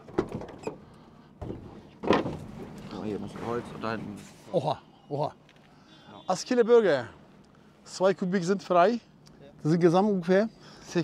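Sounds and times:
van sliding side door opening at a bulky-waste drop-off: 1.5 - 3.9
speech: 3.1 - 5.4, 6.3 - 7.2, 7.9 - 11.0.

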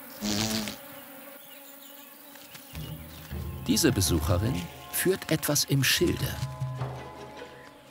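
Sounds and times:
cuckoo wasp buzzing by wild bee nest burrows in a loess wall: 0.0 - 5.5
speech: 3.7 - 6.5.

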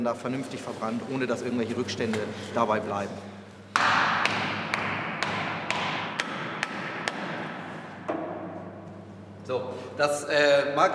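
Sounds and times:
speech: 0.0 - 3.4, 9.5 - 10.9
hammer driving wedges into solid material: 3.7 - 8.4.

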